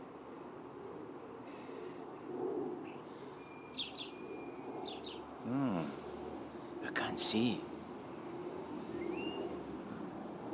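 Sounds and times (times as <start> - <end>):
steady hum: 0.0 - 10.5
starling singing in a big tree: 2.9 - 5.3, 8.9 - 9.5
speech: 7.2 - 7.7.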